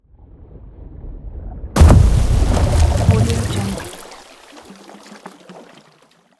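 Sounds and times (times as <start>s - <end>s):
explosive water hit: 1.8s - 5.6s.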